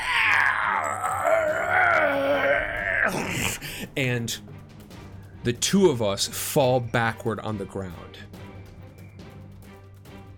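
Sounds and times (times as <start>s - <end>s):
performed anguished scream-groan: 0.0s - 3.6s
speech: 3.1s - 4.5s, 5.4s - 8.3s.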